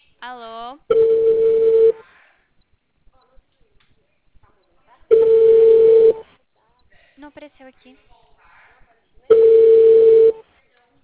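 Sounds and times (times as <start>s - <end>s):
speech: 0.2s - 1.0s, 7.2s - 8.3s
phone ringback tone as a call connects: 0.9s - 2.0s, 5.1s - 6.2s, 9.3s - 10.4s.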